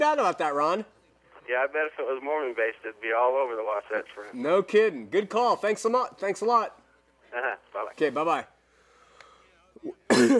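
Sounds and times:
speech: 0.0s - 8.5s, 9.8s - 10.3s
loud harsh throaty cough: 9.8s - 10.3s.

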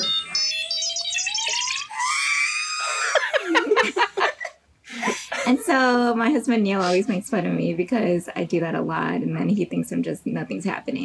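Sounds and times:
laughter: 0.9s - 6.1s
long piercing human scream: 1.9s - 3.2s
speech: 5.5s - 11.0s.

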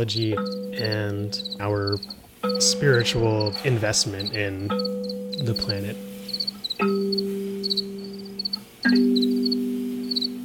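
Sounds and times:
speech: 0.0s - 6.1s
crickets chirping: 0.0s - 10.4s.

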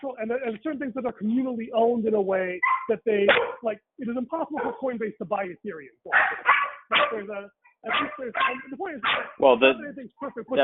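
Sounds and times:
speech: 0.0s - 10.6s
dog barking with a whiny tail: 2.6s - 3.6s, 4.6s - 4.8s, 6.1s - 9.4s.

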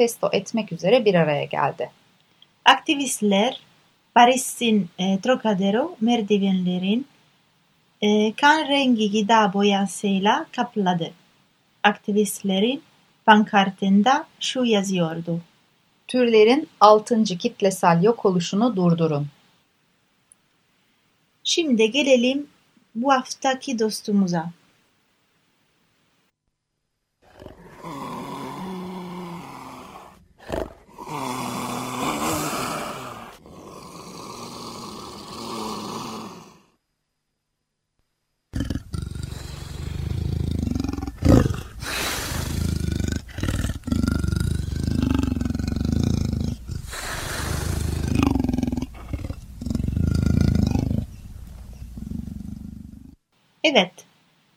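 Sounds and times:
speech: 0.0s - 2.0s, 2.7s - 7.1s, 8.0s - 11.2s, 11.8s - 15.5s, 16.1s - 19.4s, 21.5s - 24.6s, 53.7s - 54.0s
leopard roaring in deep rasping grunts: 27.2s - 36.7s, 38.6s - 53.2s.

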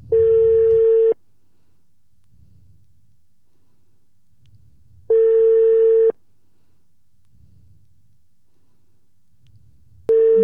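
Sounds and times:
steady electronic ringback tone on a phone line: 0.2s - 1.2s, 5.1s - 6.1s, 10.1s - 10.4s.

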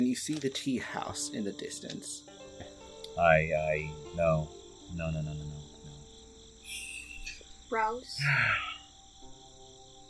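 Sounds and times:
speech: 0.0s - 2.4s, 3.2s - 5.6s, 7.7s - 8.7s
crickets chirping at night by lakes: 0.0s - 10.0s
brief voice-like vocal sounds: 8.2s - 8.8s.

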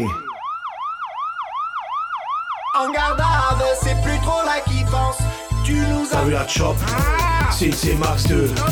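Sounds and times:
speech: 0.0s - 0.2s, 4.6s - 8.7s
siren with flashing light wailing in fast up-and-down sweeps: 0.0s - 5.9s.

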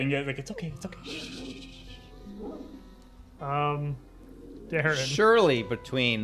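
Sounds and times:
speech: 0.0s - 1.5s, 3.4s - 4.1s, 4.7s - 6.2s
person vocally imitating an angry puppy barking: 1.0s - 1.8s.

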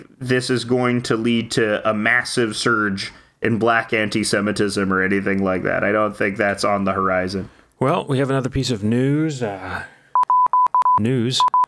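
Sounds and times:
speech: 0.0s - 9.9s, 11.0s - 11.6s
phone text message alert tone of high electronic beeps: 10.2s - 11.6s.

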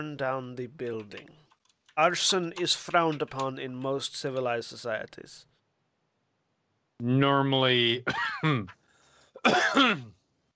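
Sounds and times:
speech: 0.0s - 1.4s, 2.0s - 5.5s, 7.0s - 8.8s, 9.4s - 10.2s
person clearing throat: 8.0s - 8.8s, 9.4s - 10.2s.

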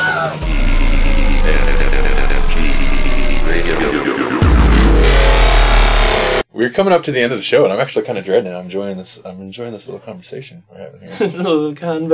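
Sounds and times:
traffic helicopter engine droning as the helicopter goes down: 0.4s - 6.4s
speech: 6.6s - 12.1s.

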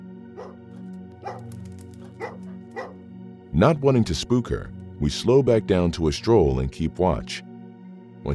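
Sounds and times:
small dog barking: 0.4s - 3.0s
speech: 3.6s - 7.5s.

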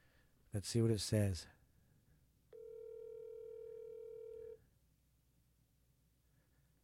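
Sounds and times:
speech: 0.5s - 1.6s
electronic phone ringing tone of an outgoing call: 2.5s - 4.6s.

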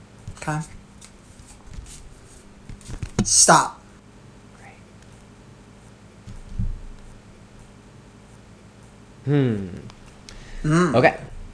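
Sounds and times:
deck of playing cards shuffled and cut: 0.3s - 3.4s
speech: 0.4s - 0.8s, 3.2s - 3.8s, 9.3s - 9.9s, 10.6s - 11.3s.

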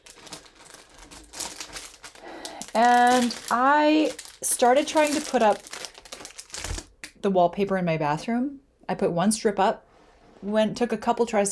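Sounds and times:
stiff rolled canvas posters crinkling as they are pressed flat: 0.0s - 6.9s
speech: 2.8s - 5.7s, 7.2s - 11.5s.

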